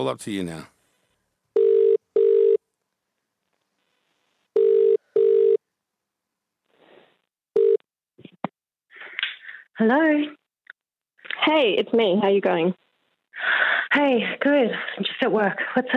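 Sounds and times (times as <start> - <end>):
speech: 0.0 - 0.8, 9.8 - 10.4, 11.4 - 12.8, 13.4 - 15.9
phone ringback tone on an outgoing call: 1.6 - 2.6, 4.6 - 5.6, 7.6 - 7.8.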